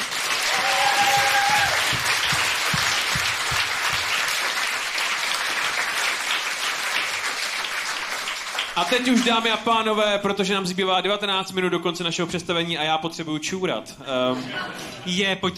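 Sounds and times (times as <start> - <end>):
audience applause: 0.0 - 9.4
low thumps: 1.0 - 4.1
speech: 8.8 - 15.5.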